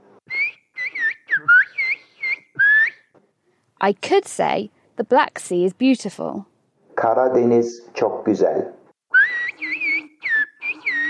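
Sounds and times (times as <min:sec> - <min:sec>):
single whistler whistling Turkish phrase: 0:00.3 - 0:03.1, 0:09.1 - 0:11.0
speech: 0:03.8 - 0:08.8.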